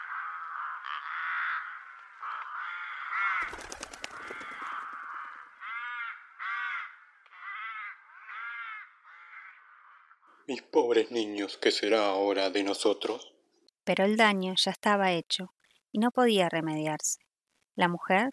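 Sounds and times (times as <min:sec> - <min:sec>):
crows cawing: 0:00.0 - 0:10.5
rustling or flapping: 0:03.4 - 0:05.4
speech: 0:10.5 - 0:13.3, 0:13.9 - 0:17.2, 0:17.8 - 0:18.3.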